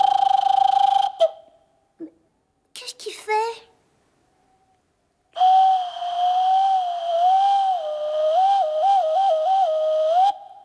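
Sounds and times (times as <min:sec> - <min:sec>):
botched cuckoo call: 0:00.0 - 0:01.5, 0:05.4 - 0:10.6.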